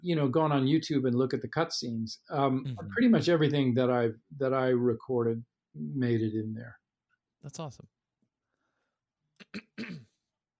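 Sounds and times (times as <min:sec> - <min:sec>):
speech: 0:00.0 - 0:06.8, 0:07.4 - 0:08.0, 0:09.4 - 0:10.1
person clearing throat: 0:09.4 - 0:10.2.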